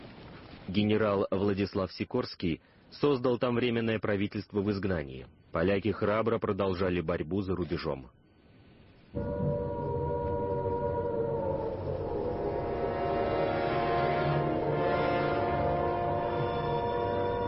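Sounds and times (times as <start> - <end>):
speech: 0.7 - 8.2, 9.1 - 9.5
air raid siren wailing in Britain at the start of war: 9.2 - 17.4.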